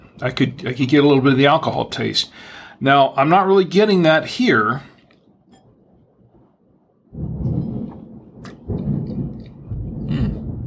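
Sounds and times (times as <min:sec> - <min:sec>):
speech: 0:00.2 - 0:04.9
deep rolling thunder: 0:07.1 - 0:10.6.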